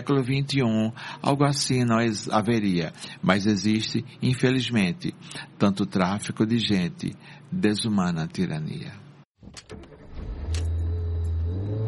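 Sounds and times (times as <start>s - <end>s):
speech: 0.0s - 9.9s
ride-hailing car engine hum: 10.3s - 11.8s.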